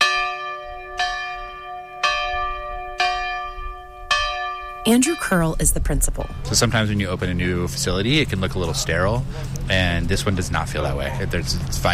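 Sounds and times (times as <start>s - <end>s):
large old schoolhouse bell ringing: 0.0s - 8.9s
speech: 4.9s - 11.9s.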